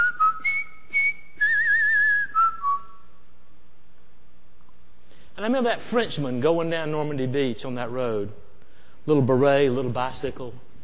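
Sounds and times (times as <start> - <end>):
person whistling a brisk military march melody: 0.0 - 3.0
speech: 5.4 - 8.4, 9.0 - 10.7.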